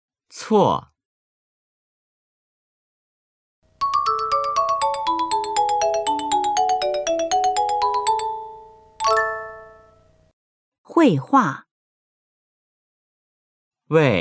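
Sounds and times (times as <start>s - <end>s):
speech: 0.3s - 0.9s, 11.0s - 11.6s, 13.9s - 14.1s
phone ringtone for an incoming call: 3.8s - 10.1s
final ringtone chime: 3.8s - 10.2s.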